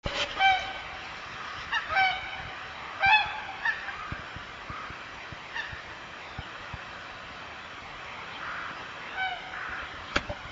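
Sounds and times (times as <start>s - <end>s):
whooper swans calling while flying in formation: 0.2s - 6.0s, 8.4s - 10.0s.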